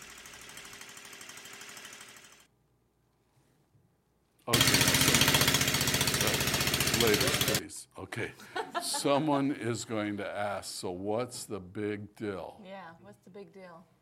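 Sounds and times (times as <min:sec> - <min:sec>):
speech: 0:04.5 - 0:04.8, 0:07.0 - 0:14.0
hydrogen-fuelled engine running on its own: 0:04.5 - 0:07.6
laughter: 0:08.4 - 0:09.9.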